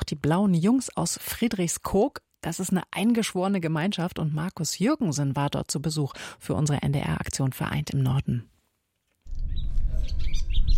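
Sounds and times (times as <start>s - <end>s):
speech: 0.1s - 8.5s
birds singing outdoors beside a North Sea dike: 9.3s - 10.7s.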